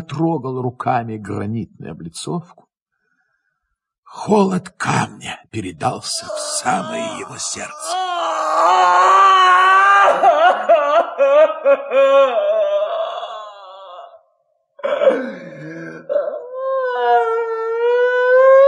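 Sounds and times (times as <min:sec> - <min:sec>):
speech: 0:00.0 - 0:02.7, 0:04.1 - 0:12.6
man's wild anguished howling cry over a city square: 0:06.1 - 0:14.2, 0:16.0 - 0:18.6.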